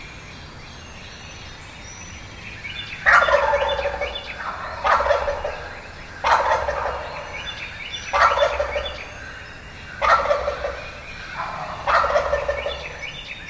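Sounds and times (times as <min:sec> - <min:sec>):
turkeys gobbling: 0:02.9 - 0:13.4.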